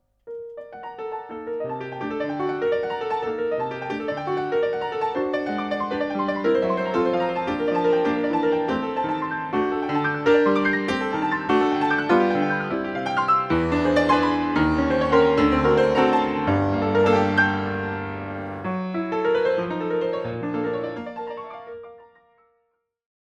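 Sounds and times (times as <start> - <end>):
loud piano: 0.0 - 22.4.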